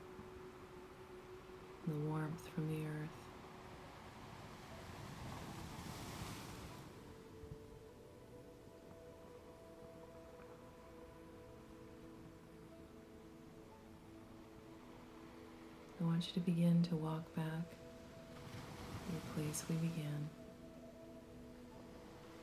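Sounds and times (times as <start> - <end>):
soft steady tonal drone: 0.0 - 22.4
speech: 1.8 - 3.3, 16.2 - 17.8, 19.1 - 20.4
ocean wave breaking on shore: 3.3 - 7.6, 17.8 - 20.3.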